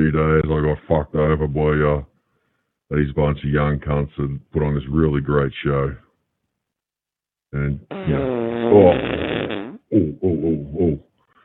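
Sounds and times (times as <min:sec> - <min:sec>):
speech: 0:00.0 - 0:02.1, 0:02.9 - 0:06.0, 0:07.5 - 0:11.1
long buzzy fart with sputtering bursts: 0:07.9 - 0:10.0.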